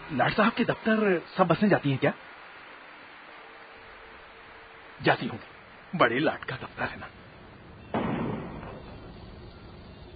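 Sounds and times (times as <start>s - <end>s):
speech: 0.1s - 2.3s, 5.0s - 7.2s
single gunshot during a city riot: 7.9s - 9.0s.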